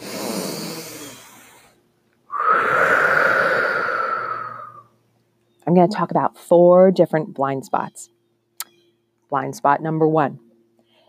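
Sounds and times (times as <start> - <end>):
deep human breath: 0.0 - 4.9, 10.8 - 11.0
speech: 5.8 - 8.2, 9.3 - 10.4.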